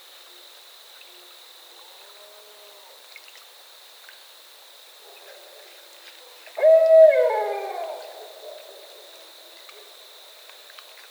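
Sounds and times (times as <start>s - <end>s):
faint steady high hum: 0.1s - 11.0s
barred owl hooting: 6.6s - 8.8s.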